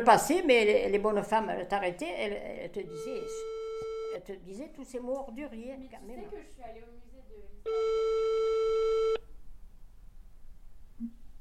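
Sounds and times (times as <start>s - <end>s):
speech: 0.0s - 8.5s, 11.0s - 11.2s
faint hiss: 0.0s - 11.3s
buzzy high telephone tone after a dropped call: 2.9s - 4.2s, 7.7s - 9.2s.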